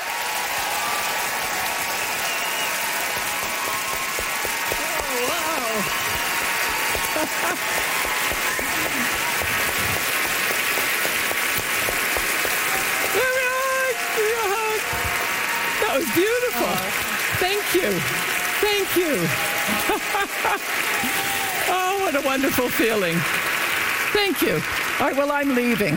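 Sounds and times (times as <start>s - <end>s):
large audience applause welcoming guest: 0.0s - 25.9s
scattered cheers and voices from audience: 0.0s - 25.9s
laughter: 4.8s - 10.0s, 18.7s - 21.2s
speech: 7.2s - 8.0s, 16.2s - 21.2s, 22.0s - 25.9s.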